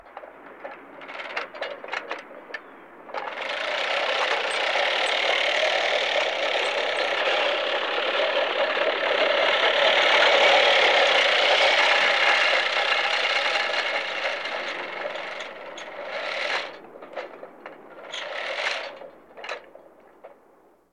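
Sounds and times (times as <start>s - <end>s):
lawn mower: 3.1s - 19.6s.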